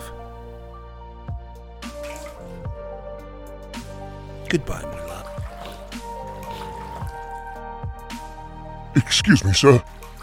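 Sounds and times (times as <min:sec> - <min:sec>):
blood dripping from a woman's arms: 0:01.8 - 0:02.8, 0:04.6 - 0:08.4, 0:09.0 - 0:10.2
speech: 0:04.5 - 0:05.2, 0:09.0 - 0:09.8.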